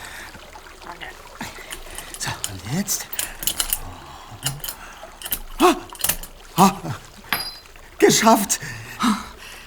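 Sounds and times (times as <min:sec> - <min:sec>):
speech: 0:02.7 - 0:03.2, 0:06.6 - 0:07.0, 0:08.0 - 0:09.2
key worked with a bent wire scraping and clicking in a lock: 0:03.0 - 0:03.8, 0:04.4 - 0:06.4
key dropping out of a lock with a light clink: 0:03.1 - 0:03.8, 0:04.4 - 0:06.4, 0:07.3 - 0:07.7.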